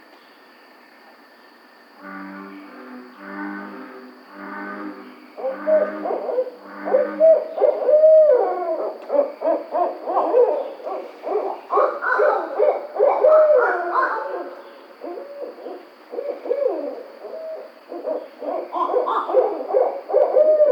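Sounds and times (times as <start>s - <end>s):
Barred owl hooting, cackling and wailing: 5.4s - 20.6s.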